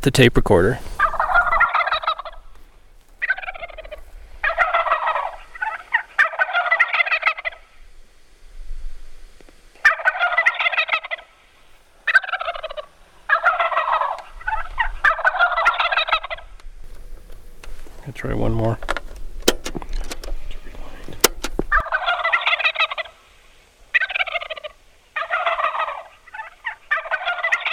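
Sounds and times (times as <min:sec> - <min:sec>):
speech: 0:00.0 - 0:00.9
wild turkey gobbling: 0:00.9 - 0:07.8, 0:09.8 - 0:16.6, 0:21.6 - 0:27.7
sharp clicks: 0:18.9 - 0:20.4, 0:21.1 - 0:21.8.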